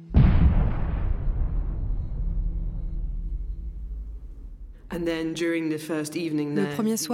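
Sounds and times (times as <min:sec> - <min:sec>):
heavy bomb explosion from an aerial bombing campaign in Yemen: 0:00.0 - 0:05.4
speech: 0:04.9 - 0:07.1.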